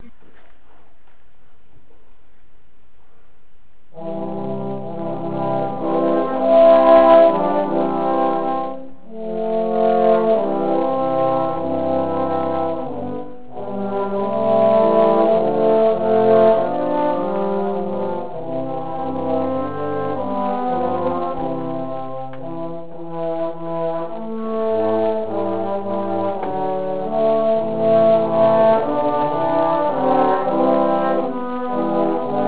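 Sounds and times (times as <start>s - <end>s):
trombones playing: 3.9s - 32.4s.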